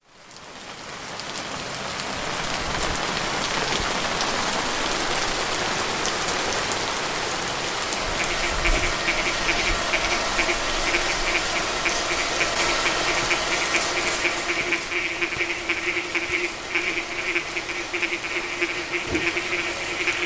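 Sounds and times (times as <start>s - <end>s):
rain: 0.0s - 20.2s
frogs croaking: 7.7s - 20.2s.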